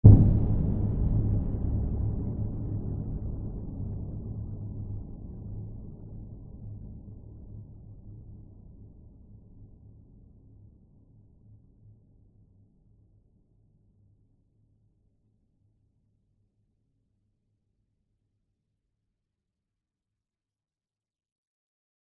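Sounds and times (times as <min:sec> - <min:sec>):
deep low cinematic boom hit for horror sound design: 0:00.0 - 0:06.7.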